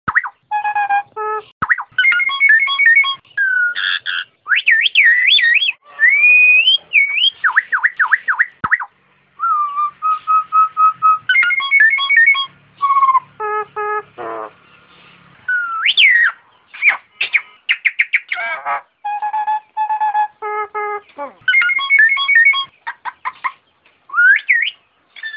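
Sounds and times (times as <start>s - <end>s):
Nias hill myna calling: 0.1s - 25.3s.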